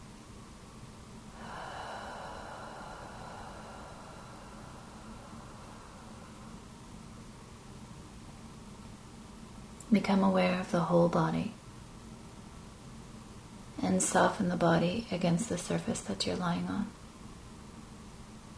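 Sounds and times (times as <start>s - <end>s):
hiss: 0.0s - 18.5s
slow deep breathing during a guided relaxation exercise: 1.3s - 7.4s
speech: 9.9s - 11.6s, 13.9s - 17.0s.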